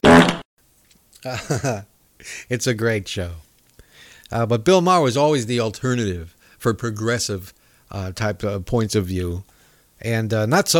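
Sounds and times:
loud buzzy fart sound effect: 0.0 - 0.5
speech: 1.2 - 3.5, 4.3 - 10.7.

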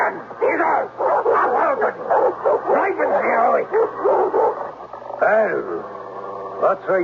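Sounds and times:
agitated dog barking and snarling: 0.4 - 4.9
speech: 6.7 - 7.0.

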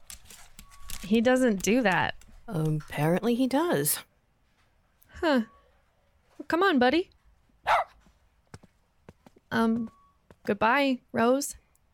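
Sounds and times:
speech: 1.0 - 4.1, 5.2 - 5.6, 6.4 - 7.1, 9.5 - 11.9
dog barking: 7.6 - 8.0.

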